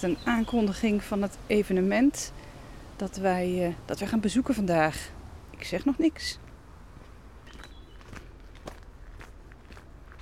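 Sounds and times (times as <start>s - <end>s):
speech: 0.0s - 6.4s
footsteps crunching while walking outdoors: 6.4s - 10.2s.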